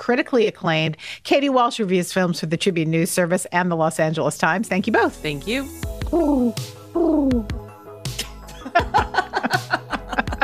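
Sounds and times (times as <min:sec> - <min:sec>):
speech: 0:00.0 - 0:07.6
person chuckling: 0:06.1 - 0:07.5, 0:08.2 - 0:10.4
person imitating pigeon cooing: 0:06.1 - 0:07.6.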